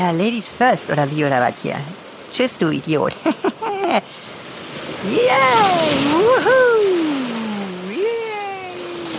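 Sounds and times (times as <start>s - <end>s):
speech: 0.0s - 4.3s, 5.0s - 6.7s
ocean surf crashing: 0.0s - 9.1s
laughter: 3.2s - 4.1s
surfer whooping and cheering: 5.1s - 7.3s.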